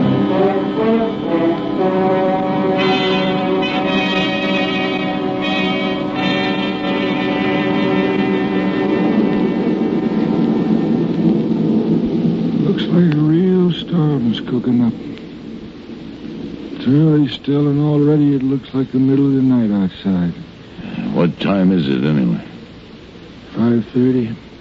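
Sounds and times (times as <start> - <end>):
sustained droning tone: 0.0 - 18.4
thunderstorm effect deep rolling thunder rumbles: 0.0 - 23.4
steady wash of rain: 0.0 - 24.5
speech: 14.5 - 15.1, 16.9 - 20.6, 21.2 - 22.5, 23.6 - 24.5.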